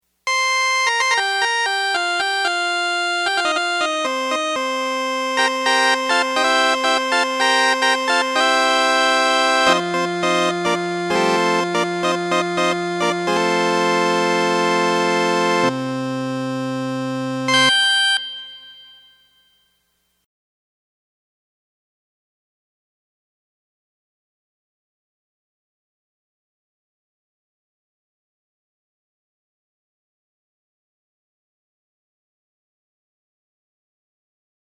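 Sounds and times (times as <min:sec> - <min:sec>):
Vox Continental combo organ: 0:00.3 - 0:19.1.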